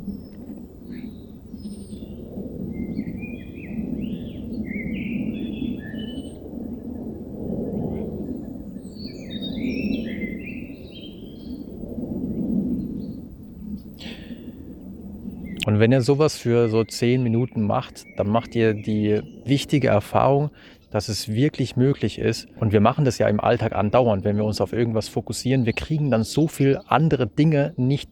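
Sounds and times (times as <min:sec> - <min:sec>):
birds chirping and twittering: 0:00.0 - 0:07.0, 0:07.8 - 0:11.8, 0:12.7 - 0:28.1
low steady rumble of an airplane passing overhead: 0:00.0 - 0:28.1
speech: 0:15.8 - 0:28.1.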